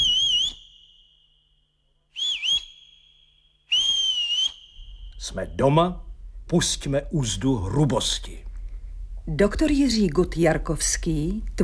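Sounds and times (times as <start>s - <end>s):
person whistling: 0.0s - 1.4s, 2.2s - 5.2s
speech: 5.2s - 8.5s, 9.3s - 11.6s.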